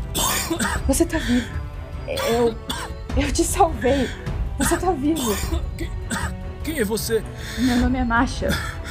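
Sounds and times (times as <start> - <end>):
person choking: 0.1 - 0.8, 5.2 - 6.3
person coughing up water: 0.1 - 0.9, 2.1 - 2.9, 4.6 - 6.3
speech: 0.5 - 8.7.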